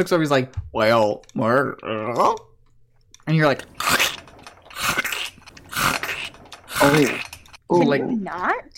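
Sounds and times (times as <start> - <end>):
speech: 0.0 - 2.5, 3.3 - 4.0, 6.8 - 8.7
mechanical crunching of something being eaten: 3.5 - 7.6.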